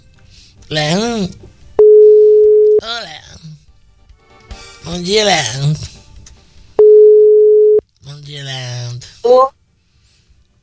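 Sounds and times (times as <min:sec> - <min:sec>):
speech: 0:00.7 - 0:01.4, 0:04.9 - 0:05.9
ringback tone of an outgoing telephone call: 0:01.8 - 0:02.8, 0:06.8 - 0:07.8.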